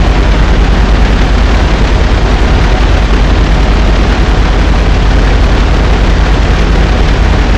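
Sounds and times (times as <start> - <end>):
vehicle engines: 0.0 - 7.5.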